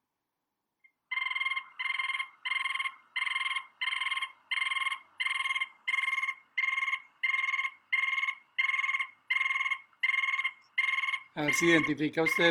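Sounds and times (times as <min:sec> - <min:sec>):
Tatamá tapaculo call: 0:01.1 - 0:12.4
speech: 0:11.4 - 0:12.4.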